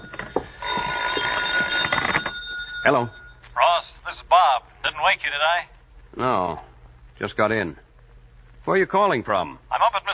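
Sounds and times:
telephone ringing in an apartment: 0.0s - 3.5s
speech: 2.8s - 3.2s, 4.4s - 7.8s, 8.7s - 10.1s.

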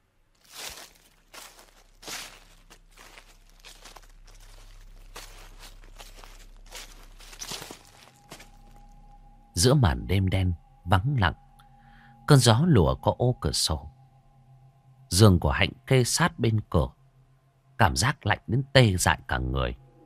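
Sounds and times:
constant low hum: 0.0s - 17.8s
footsteps rustling through a garden at night: 0.4s - 9.0s
faint steady tone: 1.6s - 15.8s
speech: 9.6s - 11.4s, 12.3s - 13.9s, 15.1s - 17.0s, 17.8s - 19.8s.

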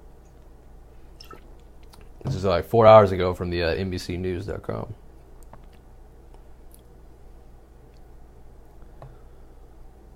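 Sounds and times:
low steady hum: 0.0s - 10.1s
sipping beer: 1.2s - 2.1s
speech: 2.2s - 5.0s.

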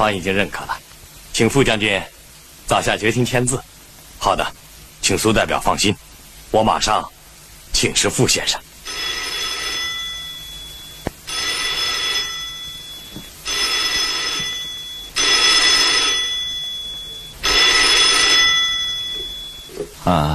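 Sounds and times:
speech: 0.0s - 0.8s, 1.4s - 8.7s, 20.1s - 20.3s
telephone bell ringing: 8.9s - 20.0s.

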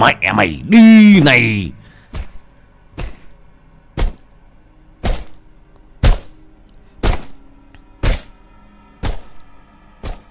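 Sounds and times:
speech: 0.0s - 1.8s
stone smashing down on a dog's head with dull heavy thuds: 2.1s - 4.4s, 5.0s - 6.4s, 7.0s - 8.4s, 9.0s - 9.4s, 10.0s - 10.3s.

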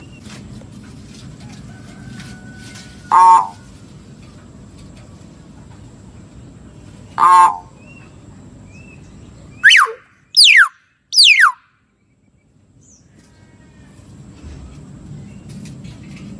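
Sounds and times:
lovebird lure call rasping screech and shrill calls: 3.1s - 3.6s, 7.2s - 7.8s, 9.6s - 11.6s.

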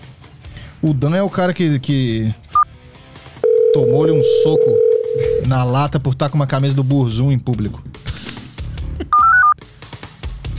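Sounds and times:
speech: 0.8s - 2.4s, 3.8s - 7.9s
touch-tone telephone keypad dialing tones: 3.5s - 5.5s.

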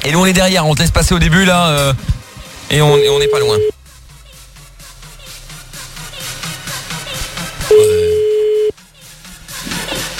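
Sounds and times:
speech: 0.0s - 2.1s, 2.7s - 3.8s
telephone call ringing tone: 2.9s - 3.7s, 7.7s - 8.7s.

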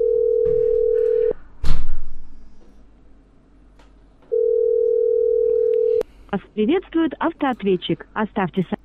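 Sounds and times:
ringback tone of an outgoing phone call: 0.0s - 1.3s, 4.3s - 6.0s
speech: 6.3s - 8.8s.

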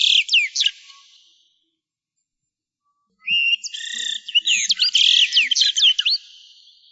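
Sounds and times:
bird chirping: 0.0s - 1.5s, 3.2s - 6.8s.

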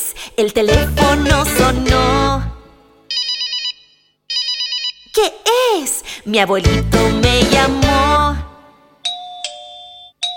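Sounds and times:
speech: 0.3s - 2.5s, 5.2s - 8.2s
doorbell with bright electronic chimes: 3.1s - 5.1s, 9.0s - 10.3s.

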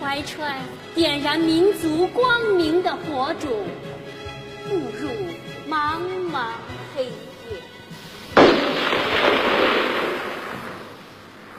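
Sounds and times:
speech: 0.1s - 3.9s, 4.6s - 7.6s
burst of gunfire from the darkness: 8.3s - 11.5s.

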